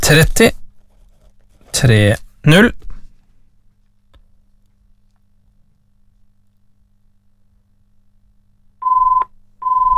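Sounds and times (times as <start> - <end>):
speech: 0.1 - 0.6, 1.8 - 2.8
telephone ringing with two electronic tones: 8.8 - 9.9.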